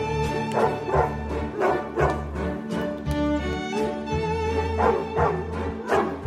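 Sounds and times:
sweeping orchestral waltz with strings and brass: 0.0 - 6.2
dogs barking and yipping: 0.3 - 2.6, 4.6 - 6.2.

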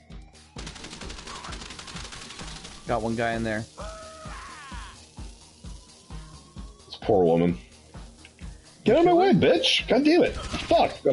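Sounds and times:
rapid automatic gunfire in a casino heist video game: 0.6 - 3.5
speech: 2.9 - 3.8, 7.1 - 7.7, 8.8 - 11.1.

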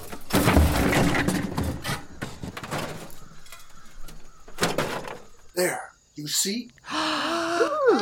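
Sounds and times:
loose junk being pushed aside, clattering and scraping: 0.0 - 5.5
speech: 5.6 - 6.8, 7.6 - 8.0.

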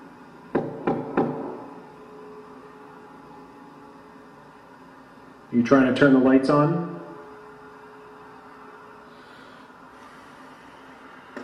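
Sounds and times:
sharp dull knocks: 0.5 - 1.6
speech: 5.5 - 6.9.

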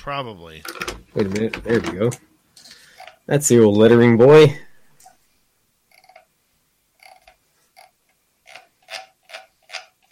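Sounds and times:
speech: 0.0 - 2.3, 3.3 - 4.6
rhythmic scratchy grinding: 5.9 - 6.3, 7.0 - 10.1.

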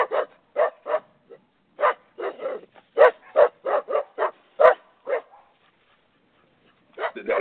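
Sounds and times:
guard dog barking: 0.0 - 5.7, 6.9 - 7.3.

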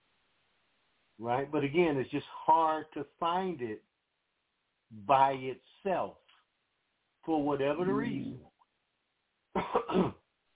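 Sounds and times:
speech: 1.2 - 3.9, 4.9 - 6.2, 7.2 - 8.5, 9.6 - 10.2
man coughing: 9.6 - 10.2.

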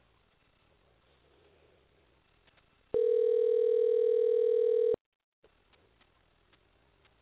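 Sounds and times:
faint noise: 0.0 - 7.2
telephone line ringing with a steady electronic tone: 3.0 - 5.0.

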